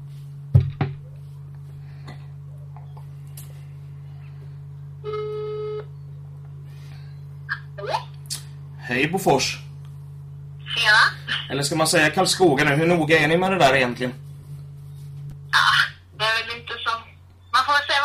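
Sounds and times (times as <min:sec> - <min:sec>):
steady phone line hum: 0:00.0 - 0:18.0
phone ringback tone while a call connects: 0:05.0 - 0:05.9
speech: 0:08.9 - 0:09.6, 0:10.9 - 0:14.2.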